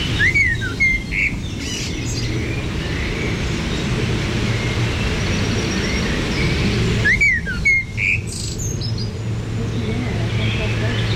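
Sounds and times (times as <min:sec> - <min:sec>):
Eurasian blackcap singing warbling phrases: 0:00.0 - 0:02.3, 0:07.0 - 0:09.1
steady low rumble of traffic: 0:00.0 - 0:11.1.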